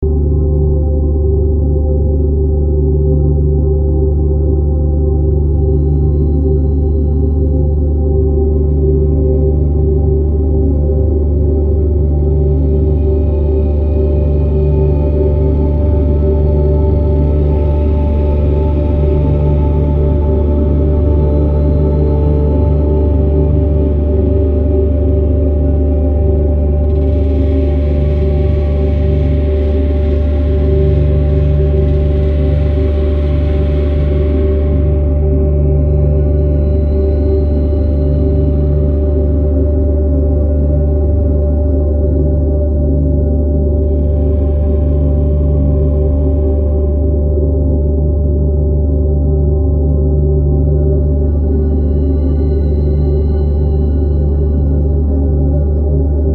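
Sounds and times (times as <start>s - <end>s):
horror-style ambient exploration music: 0.0s - 56.3s.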